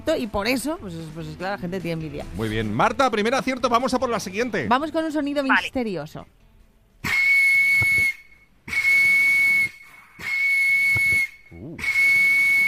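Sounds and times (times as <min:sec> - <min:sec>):
speech: 0:00.0 - 0:06.4
out-of-tune referee's whistle blasts: 0:07.0 - 0:12.6.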